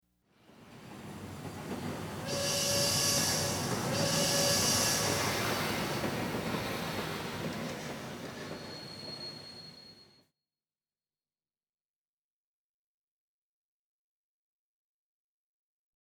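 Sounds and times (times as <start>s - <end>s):
train arriving: 0.4s - 10.2s.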